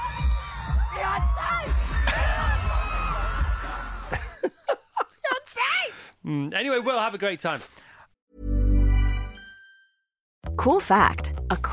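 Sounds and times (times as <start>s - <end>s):
roaring stadium crowd cheering and screaming at a concert: 0.0s - 4.2s
laughter: 1.9s - 5.4s
man shouting in a stadium crowd: 5.2s - 6.1s
speech: 6.3s - 7.8s, 10.6s - 11.7s.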